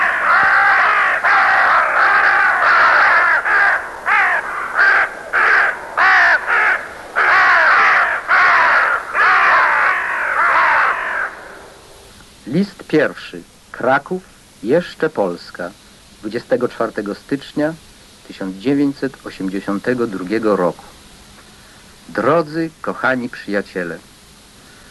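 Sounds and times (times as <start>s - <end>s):
crows cawing: 0.0s - 11.9s
speech: 12.9s - 21.0s, 22.2s - 24.1s.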